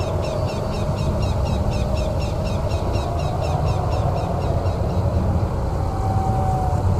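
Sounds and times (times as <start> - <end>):
graveyard ambience: 0.0 - 6.9.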